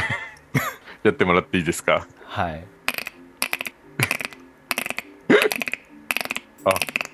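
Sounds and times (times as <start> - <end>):
laughter: 0.0 - 0.8
speech: 1.0 - 2.8, 6.6 - 6.9
person imitating frog call with vibrating tongue: 2.9 - 7.1.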